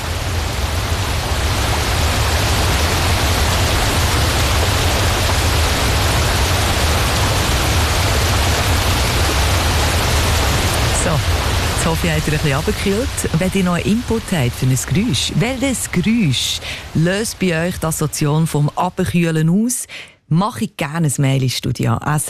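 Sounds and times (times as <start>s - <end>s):
waterfall plunging over cascades into a lake: 0.0s - 19.6s
speech: 12.0s - 22.2s.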